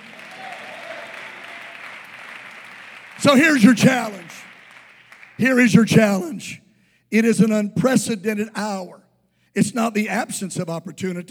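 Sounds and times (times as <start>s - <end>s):
large crowd applauding: 0.0s - 6.2s
speech: 3.2s - 4.5s, 5.4s - 9.0s, 9.6s - 11.2s.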